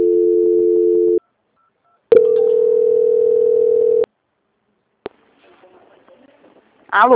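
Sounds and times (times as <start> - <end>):
telephone line tones during a call transfer: 0.0 - 1.2, 1.9 - 4.1.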